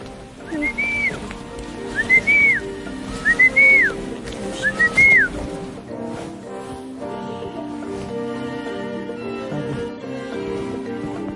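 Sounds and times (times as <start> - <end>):
constant soft outdoor hiss: 0.0 - 11.3
boy whistling to call sheep: 0.4 - 1.2, 1.9 - 5.4.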